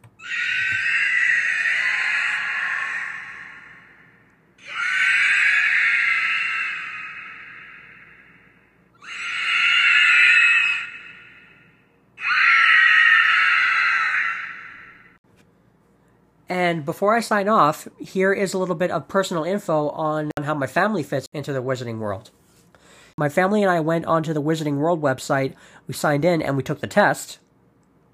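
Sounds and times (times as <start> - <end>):
fictional wraith creature shrieking attack sound effect: 0.2 - 15.2
speech: 16.5 - 22.4, 23.2 - 27.4.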